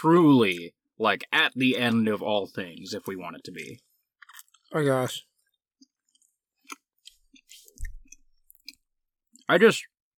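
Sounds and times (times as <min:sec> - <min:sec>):
speech: 0:00.0 - 0:03.9, 0:04.7 - 0:05.3, 0:09.5 - 0:09.9
sticky chewing of gummy candies into a microphone: 0:04.1 - 0:04.8, 0:05.4 - 0:09.5.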